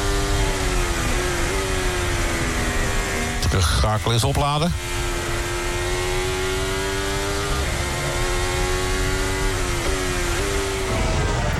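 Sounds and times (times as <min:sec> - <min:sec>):
Ferrari Formula 1 car engine whine heard onboard at the Belgian Grand Prix: 0:00.0 - 0:11.5
speech: 0:03.5 - 0:05.2.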